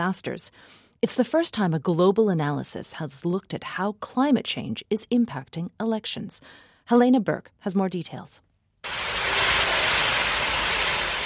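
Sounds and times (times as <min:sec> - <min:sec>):
speech: 0:00.0 - 0:09.0
rushing flood water in a city street in London during torrential rain: 0:08.9 - 0:11.2.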